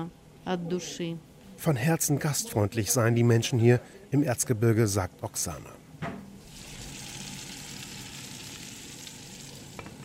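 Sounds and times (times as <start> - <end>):
speech: 0.0 - 6.1
potato pancakes frying in hot oil in a pan: 6.4 - 10.0.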